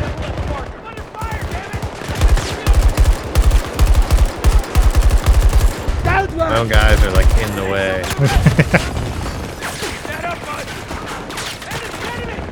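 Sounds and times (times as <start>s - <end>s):
heavy automatic gunfire in a video game: 0.0s - 12.5s
speech: 6.5s - 9.0s
laughter: 6.6s - 9.1s.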